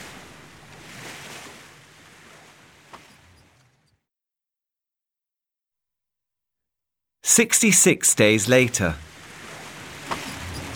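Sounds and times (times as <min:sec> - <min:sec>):
ocean waves rushing during a sea voyage: 0:00.0 - 0:02.9, 0:07.3 - 0:10.7
speech: 0:07.3 - 0:09.1.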